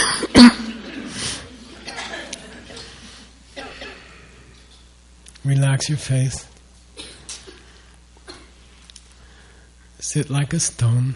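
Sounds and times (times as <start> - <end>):
person clearing throat: 0.0 - 0.8, 1.8 - 2.9, 3.6 - 4.3, 7.0 - 8.6
speech: 0.4 - 0.6, 5.5 - 6.5, 10.1 - 11.1.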